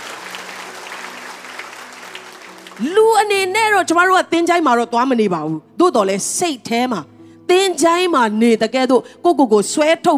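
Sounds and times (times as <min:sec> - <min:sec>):
church congregation clapping hands in praise during a Sunday service: 0:00.0 - 0:03.0
speech: 0:02.8 - 0:10.1.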